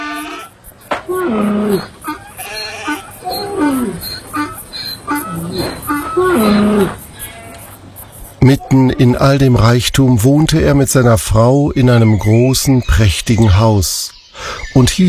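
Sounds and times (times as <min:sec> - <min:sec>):
flock of goats and sheep bleating: 0:00.0 - 0:07.7
speech: 0:08.4 - 0:15.0.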